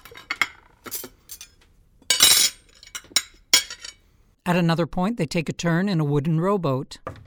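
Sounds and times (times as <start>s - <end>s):
plates and silverware clinking at a restaurant table: 0.0s - 4.1s
speech: 4.5s - 7.1s.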